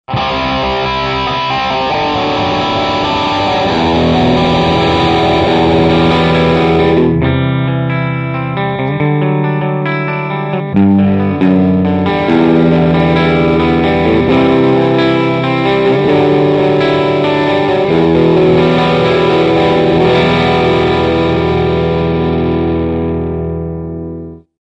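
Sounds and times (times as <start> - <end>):
high gain clean tube amp tone: 0.0 - 24.5.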